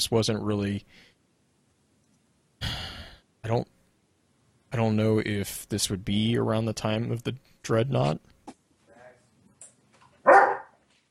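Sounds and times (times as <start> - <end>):
speech: 0.0 - 1.1, 3.5 - 3.8, 4.7 - 8.3
dog barking: 10.2 - 10.8.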